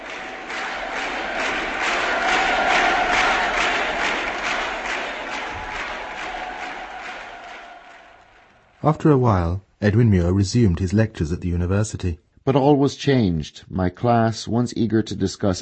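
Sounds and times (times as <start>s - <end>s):
huge crowd shouting a rhythmic chant in unison: 0.0s - 8.8s
speech: 8.8s - 15.6s.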